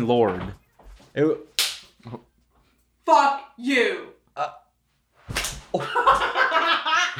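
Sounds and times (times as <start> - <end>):
speech: 0.0 - 0.6, 1.2 - 2.3, 3.1 - 4.6, 5.7 - 7.1
hand slapping a person: 1.6 - 2.0, 5.3 - 6.3
laughter: 5.7 - 7.1.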